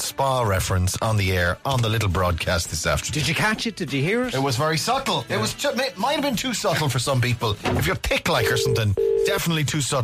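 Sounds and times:
speech: 0:00.1 - 0:10.0
mid-pitched ringing tone of an outgoing phone call to County Louth Ireland: 0:08.4 - 0:09.4.

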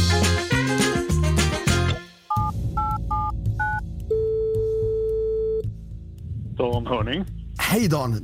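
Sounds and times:
brief burst of music: 0:00.0 - 0:08.2
electronic phone keypad beeps: 0:02.3 - 0:05.6
speech: 0:06.6 - 0:08.2.

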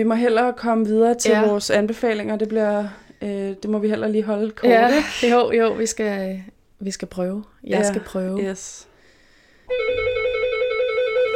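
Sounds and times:
speech: 0:00.0 - 0:08.9, 0:09.7 - 0:10.2
electronic doorbell ringing: 0:09.7 - 0:11.3.

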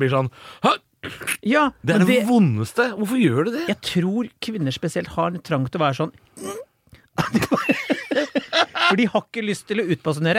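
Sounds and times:
speech: 0:00.0 - 0:06.6, 0:08.9 - 0:10.3
voice imitating a stifled sneeze with squeaky voiced puffs: 0:01.0 - 0:01.5
laughter: 0:07.2 - 0:09.1.

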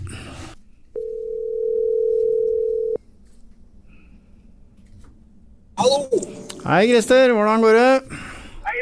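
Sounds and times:
telephone ringback tone while a call is being placed: 0:01.0 - 0:03.0
speech: 0:05.9 - 0:08.1.

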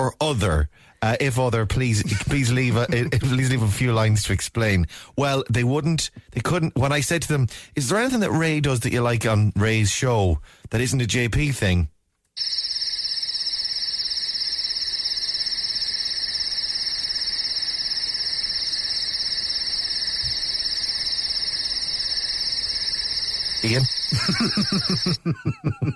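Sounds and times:
speech: 0:00.0 - 0:12.8, 0:23.6 - 0:25.9
voices or laughter: 0:02.0 - 0:03.5, 0:24.1 - 0:25.9
crickets chirping: 0:12.4 - 0:25.2.

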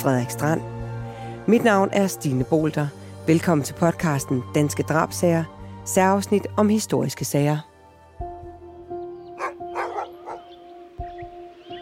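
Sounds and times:
speech: 0:00.0 - 0:00.8, 0:01.5 - 0:07.7
hunting dogs barking insistently: 0:09.4 - 0:10.6.

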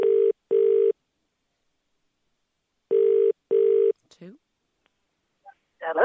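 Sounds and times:
ringback tone on an outgoing phone call: 0:00.0 - 0:00.9, 0:02.9 - 0:03.9.

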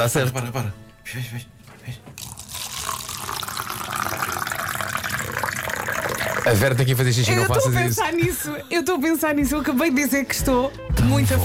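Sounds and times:
speech: 0:00.0 - 0:02.1, 0:06.4 - 0:11.4
water running from a tap: 0:02.1 - 0:07.4.

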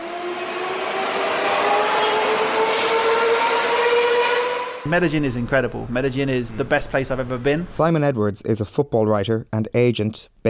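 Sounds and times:
electric Medellín Metro train motor whine: 0:00.0 - 0:04.9
speech: 0:04.9 - 0:10.4.

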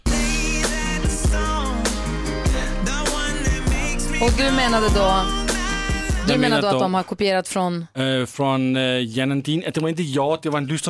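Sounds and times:
full-band pop song with punchy drum beat, bass and melodic instruments: 0:00.0 - 0:07.1
speech: 0:04.2 - 0:05.4, 0:06.3 - 0:10.8.

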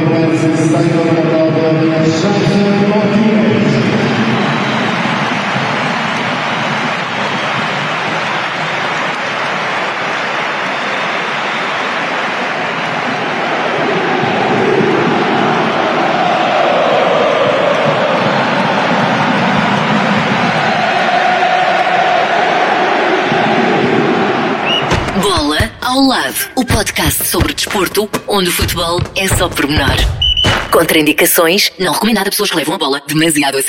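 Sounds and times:
football stadium crowd applauding and cheering a player: 0:00.0 - 0:33.0
speech: 0:00.1 - 0:03.5, 0:27.7 - 0:33.6.

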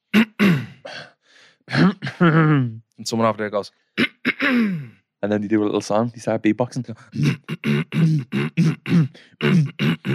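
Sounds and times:
person imitating coughs and throat clearing: 0:00.0 - 0:01.1, 0:01.7 - 0:02.8, 0:04.0 - 0:05.0, 0:07.1 - 0:10.1
speech: 0:02.2 - 0:10.1.

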